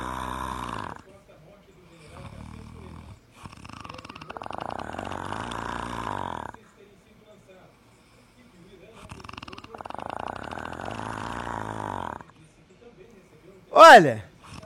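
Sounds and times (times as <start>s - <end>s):
loud rasping snores: 0.0s - 1.1s, 2.0s - 6.6s, 9.0s - 12.3s, 14.4s - 14.6s
speech: 13.8s - 14.2s.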